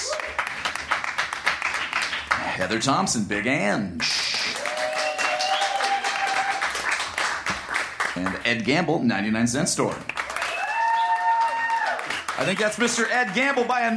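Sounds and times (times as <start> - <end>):
audience applauding to vote for a contest winner: 0.0 - 2.6, 4.0 - 8.4, 9.9 - 13.9
speech: 2.6 - 4.2, 8.2 - 10.2, 12.4 - 13.9
faint cheers or whistles: 4.5 - 6.6, 10.4 - 12.0.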